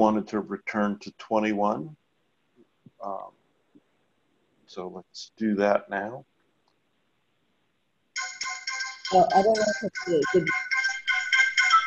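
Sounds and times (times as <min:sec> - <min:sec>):
speech: 0:00.0 - 0:02.0, 0:03.0 - 0:03.4, 0:04.7 - 0:06.3, 0:09.1 - 0:10.7
melodic phone ringtone chiming during a team call: 0:08.2 - 0:11.8.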